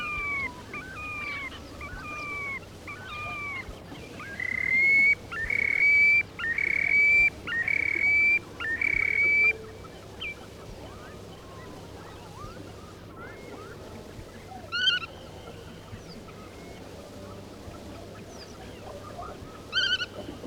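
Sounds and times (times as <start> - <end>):
Terek sandpipers calling on river shoals: 0.0 - 10.4.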